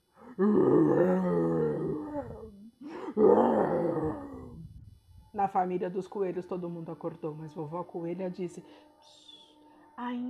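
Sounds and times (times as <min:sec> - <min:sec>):
lion roaring: 0:00.2 - 0:02.5, 0:03.2 - 0:04.6
speech: 0:00.4 - 0:01.3, 0:05.4 - 0:09.2, 0:10.0 - 0:10.2.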